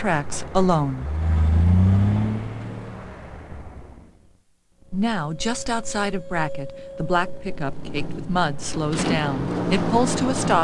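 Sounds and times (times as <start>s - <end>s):
speech: 0.0s - 1.1s, 4.9s - 10.6s
semi truck engine droning past on a desert road: 0.2s - 4.2s, 6.2s - 10.6s.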